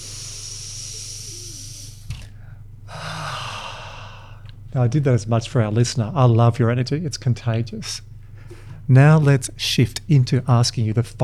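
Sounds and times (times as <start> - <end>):
person breathing in through the nose and out through the mouth: 0.0 - 4.6, 8.2 - 8.9
speech: 4.8 - 8.2, 8.9 - 11.2.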